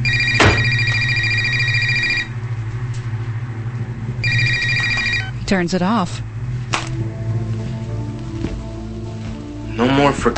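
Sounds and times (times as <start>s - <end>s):
cell phone ringtone sounding from inside a purse: 0.0s - 2.3s, 4.2s - 5.4s
low steady hum: 0.0s - 10.3s
speech: 5.5s - 6.3s, 9.8s - 10.3s.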